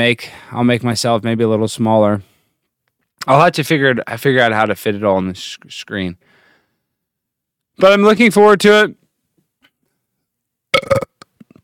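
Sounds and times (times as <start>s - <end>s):
speech: 0.0s - 2.3s, 3.2s - 6.3s, 7.8s - 9.0s
person burping: 10.8s - 11.6s.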